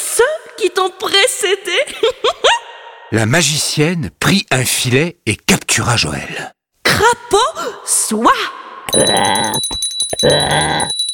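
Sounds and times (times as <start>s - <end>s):
speech: 0.2s - 2.5s, 3.1s - 10.9s
small bell ringing: 8.9s - 11.1s.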